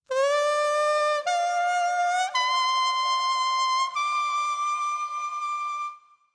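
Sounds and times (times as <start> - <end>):
kusabue grass whistle: 0.1 - 6.1.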